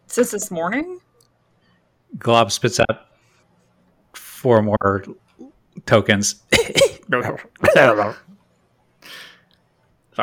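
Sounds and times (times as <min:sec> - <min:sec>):
speech: 0:00.2 - 0:01.1, 0:02.2 - 0:03.1, 0:04.4 - 0:05.2, 0:05.8 - 0:08.3
voice acting out croaky hacking coughs: 0:06.5 - 0:08.2.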